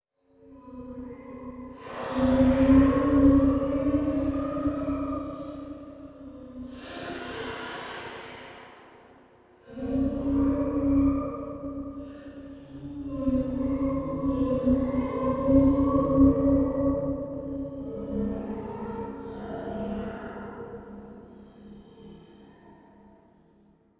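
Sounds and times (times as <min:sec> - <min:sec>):
ghost sound: 0:01.1 - 0:17.4.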